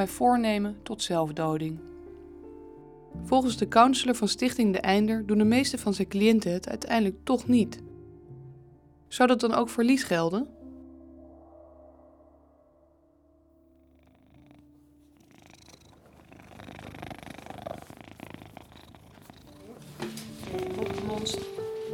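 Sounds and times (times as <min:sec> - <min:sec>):
speech: 0:00.0 - 0:01.9, 0:03.2 - 0:07.9, 0:09.1 - 0:10.6
cat purring: 0:13.6 - 0:21.9
rustling and handling noises: 0:19.1 - 0:21.9.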